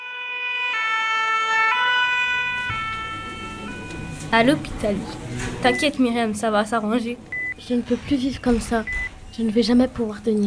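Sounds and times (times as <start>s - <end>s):
ambulance siren two-tone call: 0.0s - 4.4s
traffic rumble: 1.7s - 10.4s
speech: 4.3s - 10.4s.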